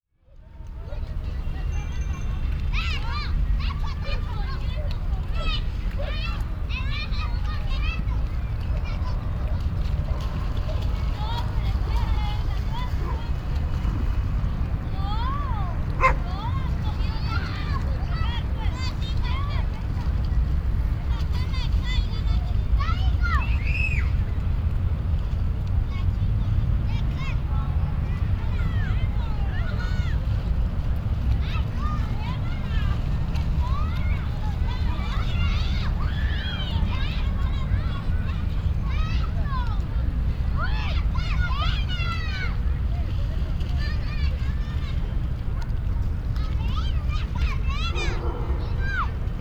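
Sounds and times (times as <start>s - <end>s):
water fountain jets in Bogota: 0.4s - 49.3s.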